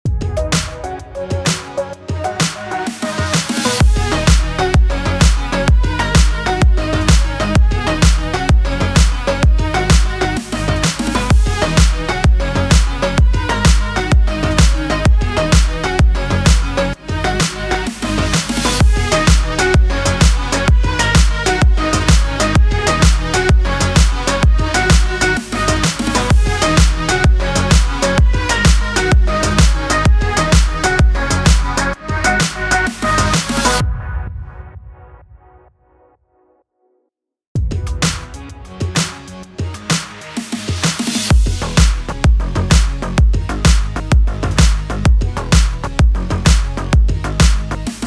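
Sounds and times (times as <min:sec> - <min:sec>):
arpeggiated house music bed in E minor at 128 BPM: 0:00.1 - 0:33.9, 0:37.6 - 0:48.0.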